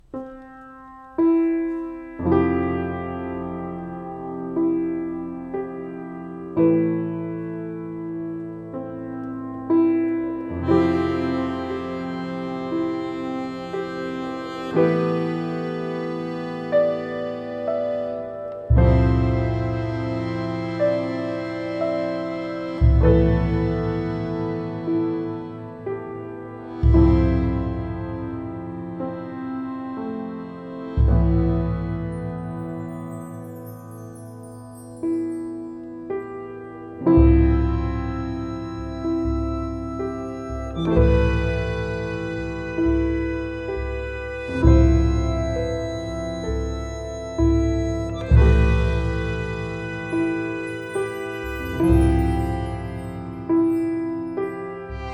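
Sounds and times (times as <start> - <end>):
piano game music: 0.0 - 55.1.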